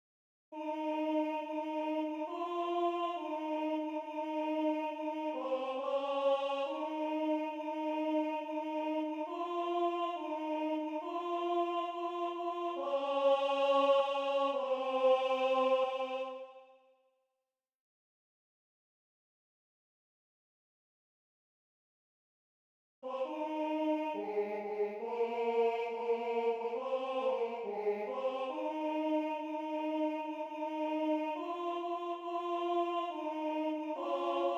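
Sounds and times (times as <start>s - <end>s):
tenor singing: 0.6s - 16.7s, 23.1s - 34.5s.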